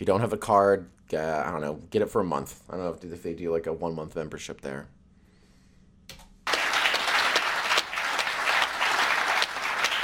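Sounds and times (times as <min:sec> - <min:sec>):
speech: 0:00.0 - 0:05.0
large audience applause: 0:06.5 - 0:10.0.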